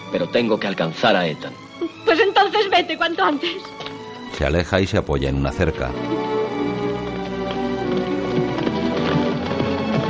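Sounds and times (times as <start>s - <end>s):
speech: 0.1s - 6.4s
hoofbeats of a horse galloping away in a Western scene: 5.9s - 10.0s.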